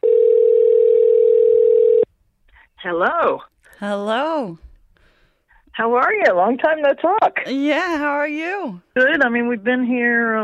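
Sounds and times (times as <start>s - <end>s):
telephone ringing tone of outgoing call: 0.0s - 2.1s
speech: 2.8s - 4.7s, 5.8s - 10.4s.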